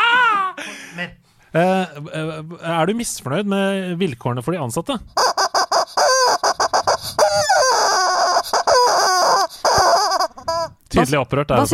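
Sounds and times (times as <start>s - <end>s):
speech: 1.0s - 5.5s, 11.0s - 11.7s
squeaky rubber goose toy being squeezed: 5.2s - 10.8s.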